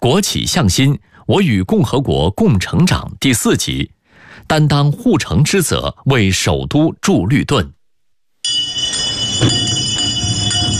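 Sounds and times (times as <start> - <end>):
speech: 0.0 - 7.8, 9.4 - 9.9
Beijing garbage-collection hand bell ringing: 8.4 - 10.7.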